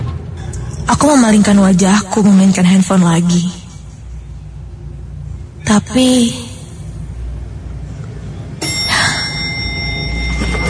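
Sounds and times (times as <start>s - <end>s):
constant hum: 0.0s - 10.6s
speech: 0.9s - 3.6s, 5.7s - 6.4s
lift chime ringing as elevator doors open: 8.6s - 10.6s.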